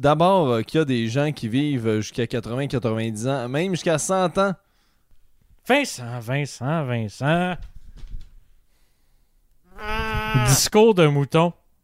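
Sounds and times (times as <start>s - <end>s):
speech: 0.0s - 4.6s, 5.6s - 7.7s, 9.8s - 11.6s
person imitating a sheep bleat: 9.7s - 10.7s.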